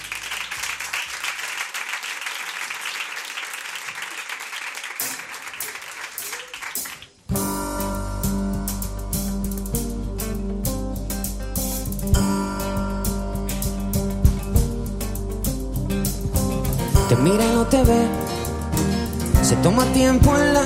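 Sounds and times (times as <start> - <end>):
music: 0.0 - 1.1, 6.7 - 20.6
crowd applauding loudly: 0.0 - 7.3
speech: 17.2 - 18.2, 19.5 - 20.6.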